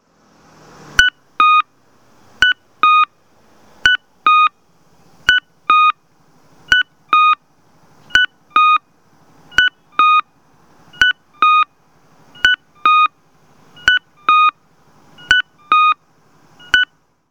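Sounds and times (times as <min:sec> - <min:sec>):
Kyosan LTA-SBSK-B audible traffic signal cuckoo tone at crossing in Yawata Kyoto: 0:01.0 - 0:01.7, 0:02.4 - 0:03.1, 0:03.8 - 0:04.6, 0:05.2 - 0:06.0, 0:06.7 - 0:07.4, 0:08.1 - 0:08.9, 0:09.5 - 0:17.0.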